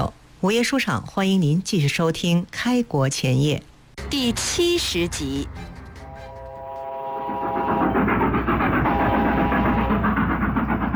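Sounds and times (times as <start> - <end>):
speech: 0.0 - 5.6
faint tonal whine: 4.0 - 10.4
train rumbling along the rails: 4.0 - 10.9.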